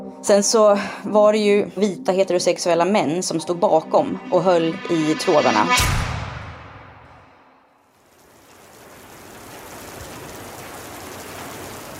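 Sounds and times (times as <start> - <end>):
speech: 0.2 - 6.1
heavy rain pouring down with drops pattering on surfaces: 7.9 - 11.9.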